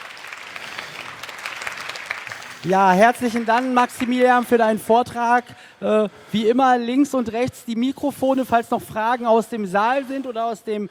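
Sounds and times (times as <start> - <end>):
audience applause in a hall at the end of a talk: 0.0 - 4.8
speech: 2.6 - 10.8.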